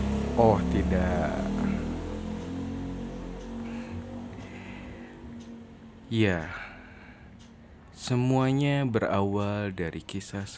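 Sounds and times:
motorcycle engine droning: 0.0s - 7.4s
speech: 0.4s - 1.6s, 6.1s - 6.7s, 8.0s - 10.5s.

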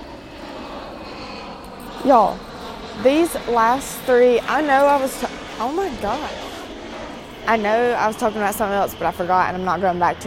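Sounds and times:
airplane engine roaring overhead: 0.0s - 10.2s
speech: 2.0s - 6.5s, 7.5s - 10.2s.

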